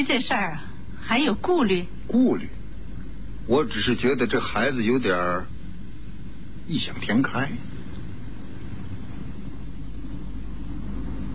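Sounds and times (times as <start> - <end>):
speech: 0.0 - 2.6, 3.5 - 5.6, 6.7 - 7.7
car engine rumbling as the car rolls in and halts: 0.0 - 11.3.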